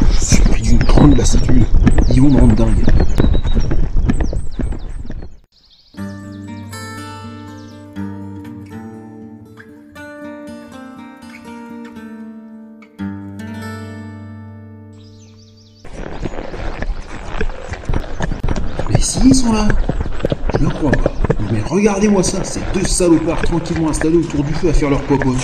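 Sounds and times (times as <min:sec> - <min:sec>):
horse hooves galloping as a rider races: 0:00.0 - 0:05.5, 0:15.8 - 0:25.4
speech: 0:01.0 - 0:03.4, 0:21.8 - 0:25.4.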